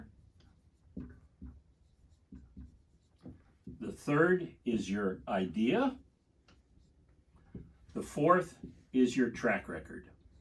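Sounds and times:
marker squeaking on a whiteboard: 0.0s - 4.3s, 6.3s - 8.8s, 10.1s - 10.4s
speech: 4.0s - 6.0s, 8.0s - 10.1s.

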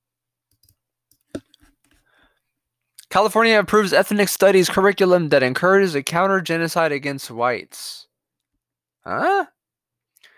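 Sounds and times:
computer mouse clicking on a news headline: 0.5s - 2.0s
speech: 3.1s - 8.1s, 9.0s - 9.6s.

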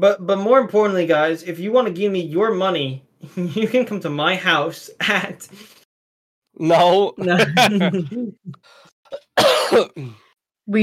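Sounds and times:
speech: 0.0s - 5.8s, 6.6s - 10.8s
laughter: 7.2s - 8.6s
loud harsh cough: 9.1s - 10.3s.

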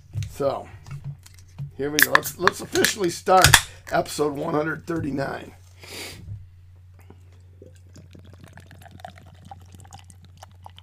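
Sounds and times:
speech: 0.4s - 0.8s, 1.8s - 6.2s
golden double IPA beer pouring into a glass: 7.6s - 10.8s.

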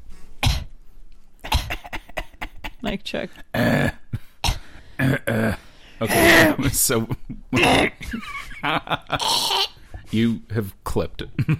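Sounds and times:
person coughing into microphone: 0.4s - 0.7s, 1.4s - 2.8s, 3.6s - 6.8s
speech: 2.8s - 4.0s, 5.1s - 11.5s
laughter: 6.5s - 9.4s.

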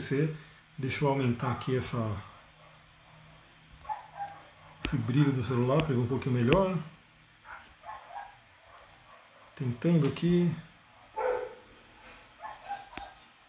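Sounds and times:
speech: 0.0s - 2.3s, 4.9s - 7.0s, 9.6s - 10.7s
dog barking: 2.3s - 5.1s, 7.4s - 9.8s, 10.9s - 11.7s, 12.4s - 13.4s.

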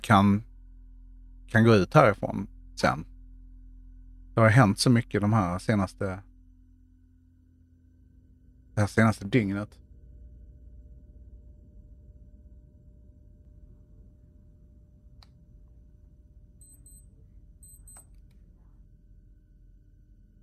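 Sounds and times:
speech: 0.0s - 0.5s, 1.5s - 3.1s, 4.4s - 6.3s, 8.8s - 9.8s
steady low rumbling hum: 0.0s - 20.4s
high thin electronic beeps of a digital clock in a tent: 16.6s - 18.1s.

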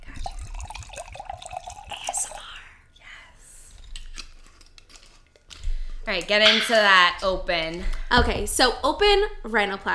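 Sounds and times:
wine pouring into a glass: 0.0s - 2.8s
speech: 6.1s - 9.9s.

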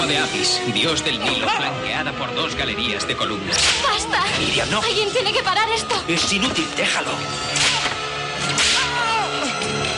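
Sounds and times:
speech: 0.0s - 7.9s
whip lashes as a guard strikes an old slave at an ancient Egyptian building site: 7.5s - 9.1s.

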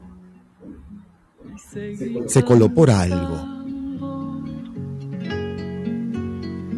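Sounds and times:
folk song with singing over gentle accompaniment: 0.0s - 6.7s
speech: 1.6s - 3.5s.

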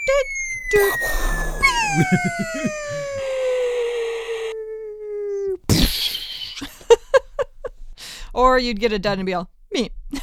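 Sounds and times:
speech: 0.1s - 1.3s, 1.9s - 3.2s, 8.4s - 10.0s
voice imitating electronic Battleship game explosion noises: 0.7s - 3.8s, 4.4s - 6.7s
laughter: 1.6s - 3.7s, 5.8s - 7.7s.

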